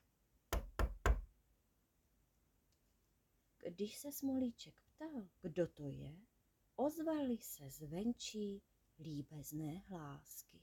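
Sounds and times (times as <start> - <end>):
knocking on the wooden door of a cottage: 0.5 - 1.3
speech: 3.6 - 10.6.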